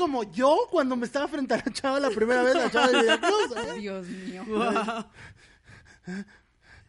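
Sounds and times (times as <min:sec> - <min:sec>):
speech: 0:00.0 - 0:05.5, 0:06.1 - 0:06.4
laughter: 0:01.5 - 0:05.2
voice imitating nervous breathing: 0:05.0 - 0:06.8.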